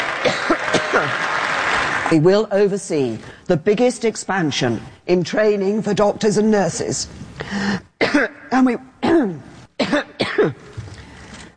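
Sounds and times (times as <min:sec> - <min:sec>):
person coughing during a speech: 0:00.2 - 0:01.1, 0:08.0 - 0:10.8
speech: 0:02.1 - 0:07.8, 0:08.6 - 0:08.9.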